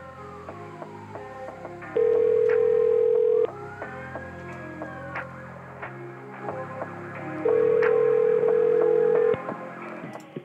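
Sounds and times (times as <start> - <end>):
telephone buzzing tones on a call back: 2.0 - 3.5, 7.4 - 9.4.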